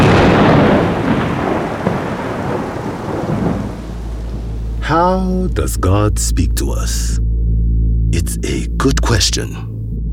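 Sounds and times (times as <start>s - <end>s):
thunder crack from a lightning strike rolling into a heavy rumble: 0.0s - 5.2s
rain hiss: 0.0s - 6.9s
speech: 4.9s - 7.3s, 8.1s - 9.7s.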